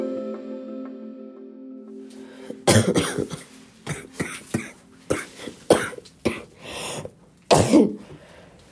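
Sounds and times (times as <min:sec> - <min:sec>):
person coughing harshly: 0:02.6 - 0:08.1.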